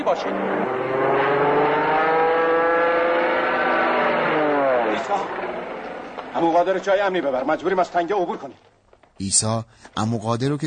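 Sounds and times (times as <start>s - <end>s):
speech: 0.0s - 1.4s, 6.3s - 10.6s
military truck engine drone: 0.0s - 6.4s.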